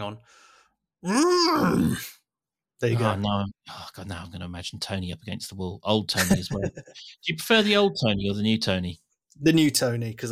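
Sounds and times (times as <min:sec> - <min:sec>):
speech: 0:00.1 - 0:02.1, 0:02.8 - 0:10.3
man's voice imitating a bull's growl: 0:01.0 - 0:02.2
laughter: 0:06.1 - 0:07.7.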